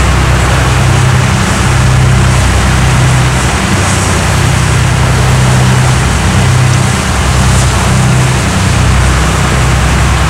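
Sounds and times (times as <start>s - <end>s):
boat engine: 0.0s - 10.2s.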